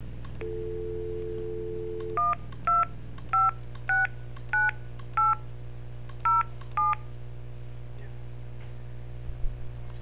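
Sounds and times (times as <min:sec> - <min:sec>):
phone dialing: 0:00.4 - 0:05.3.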